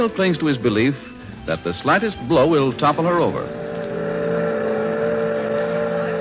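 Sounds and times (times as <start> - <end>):
speech: 0.0 - 3.6
boat motor droning on an excursion boat: 3.1 - 6.1.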